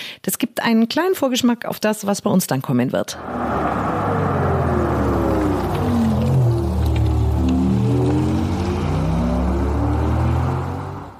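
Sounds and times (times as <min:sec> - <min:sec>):
speech: 0:00.7 - 0:03.8
Audi e-tron electric car pedestrian warning hum as used in the USA: 0:03.2 - 0:11.1.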